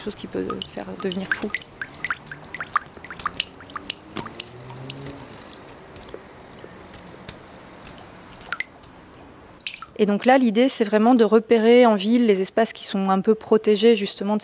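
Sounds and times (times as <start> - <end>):
speech: 0.0 - 1.9, 10.0 - 14.4
water dripping into a sink: 0.0 - 9.0, 9.6 - 10.0.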